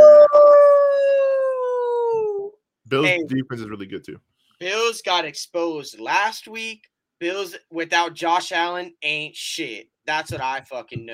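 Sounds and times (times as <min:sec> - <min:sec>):
person imitating a wolf howl: 0:00.0 - 0:02.6
speech: 0:02.9 - 0:11.1.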